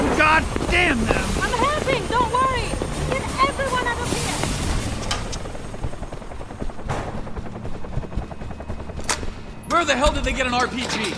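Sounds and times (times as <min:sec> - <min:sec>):
sharp bursts like gunfire cracking: 0:00.0 - 0:05.6
helicopter rotor thudding over engine roar: 0:00.0 - 0:11.1
speech: 0:00.4 - 0:02.7, 0:09.8 - 0:11.1.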